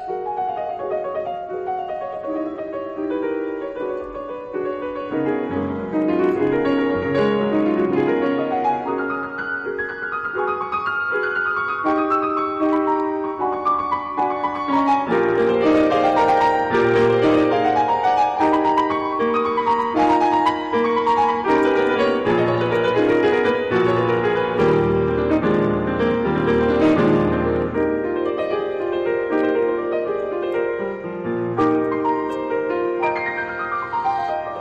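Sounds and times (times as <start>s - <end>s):
piano music from a newly released album: 0.0s - 34.6s.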